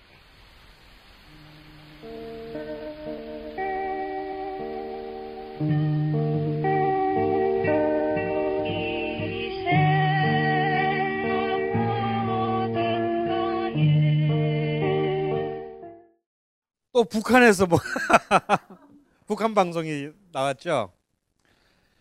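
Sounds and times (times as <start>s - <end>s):
muffled lo-fi song recording from an illegal cassette tape: 0.0s - 15.1s
speech: 5.6s - 5.9s, 17.0s - 18.7s, 19.3s - 21.0s
laughter: 17.6s - 19.0s.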